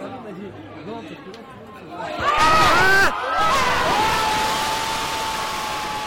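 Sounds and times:
shrill shouts of football fans: 2.2 - 6.0
stadium crowd of Italian football fans cheering and screaming at a goal: 2.2 - 6.0.

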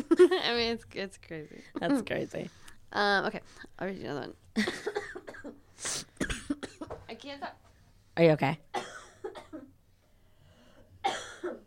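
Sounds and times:
speech: 0.2 - 5.9, 8.2 - 8.7
person coughing harshly: 4.6 - 6.9, 8.7 - 9.8, 11.0 - 11.6.

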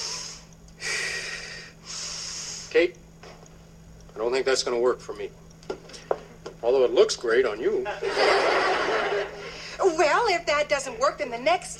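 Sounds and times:
deep breath drawn from the diaphragm: 0.0 - 2.7
speech: 2.8 - 3.0, 4.2 - 5.4, 6.6 - 11.7
laughter: 7.8 - 9.6.

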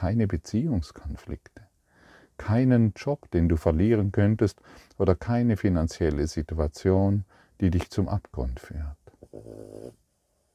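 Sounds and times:
speech: 0.0 - 1.7, 2.4 - 10.0
dog grumbling with short huffs: 9.2 - 10.0.

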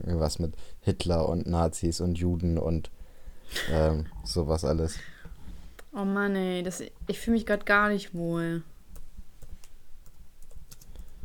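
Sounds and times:
speech: 0.1 - 5.1, 6.0 - 8.7
typing on a computer keyboard: 8.9 - 11.2.

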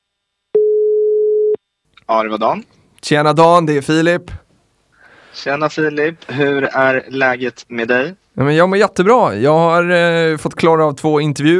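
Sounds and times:
telephone ringing tone from a call being placed to Japan: 0.6 - 1.6
speech: 2.1 - 4.4, 5.4 - 11.5.

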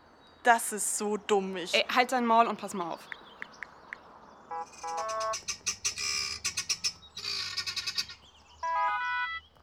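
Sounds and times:
speech: 0.4 - 3.2, 4.6 - 5.6
guineafowl calling harshly with rattling cackling notes: 4.5 - 9.4.

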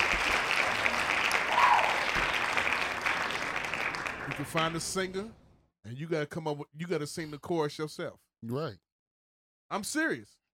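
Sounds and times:
applause from a small group: 0.0 - 5.0
speech: 4.4 - 8.8, 9.7 - 10.4.

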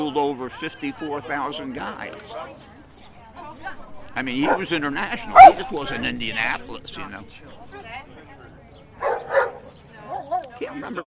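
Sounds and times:
speech: 0.1 - 2.8, 3.5 - 8.3, 10.6 - 11.0
dog barking: 4.4 - 5.9, 9.0 - 10.4.

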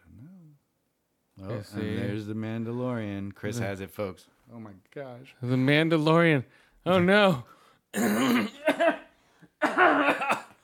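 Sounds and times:
speech: 1.4 - 9.0, 9.6 - 10.4
person with something stuck in the throat clearing it and coughing: 8.0 - 10.6.

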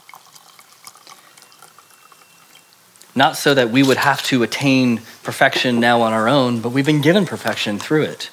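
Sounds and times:
liquid pouring into a small communion cup: 0.0 - 8.3
speech: 3.2 - 8.3.

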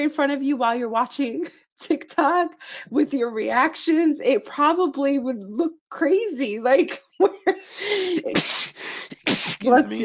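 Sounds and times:
speech: 0.0 - 10.0
loud sneeze after a short voiced intake: 7.8 - 9.7.

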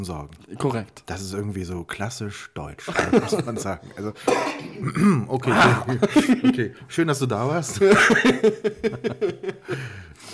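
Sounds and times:
speech: 0.0 - 10.3
laughter: 2.8 - 4.2, 5.4 - 6.8, 7.7 - 10.0
person hacking coughs: 2.9 - 3.4, 4.2 - 6.4
drawn-out wheezy breath: 9.6 - 10.3.

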